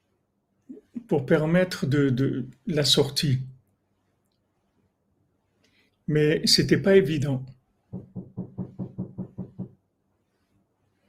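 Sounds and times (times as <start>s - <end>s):
speech: 1.1s - 3.5s, 6.1s - 8.5s
dull wooden knocks on a door: 7.9s - 9.8s.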